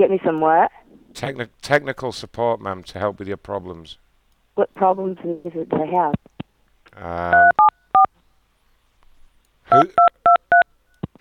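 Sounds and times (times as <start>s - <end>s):
speech: 0.0s - 4.0s, 4.6s - 6.3s, 7.0s - 7.6s, 9.7s - 10.1s
telephone keypad dialing tones on a call to a town hall: 7.3s - 8.1s, 9.7s - 10.7s
short voiced sound: 9.7s - 10.0s.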